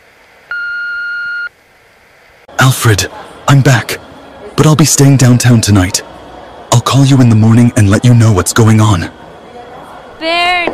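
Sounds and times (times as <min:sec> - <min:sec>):
answering machine beep: 0:00.5 - 0:01.5
speech: 0:02.6 - 0:04.0, 0:04.6 - 0:06.1, 0:06.9 - 0:09.2, 0:10.2 - 0:10.7.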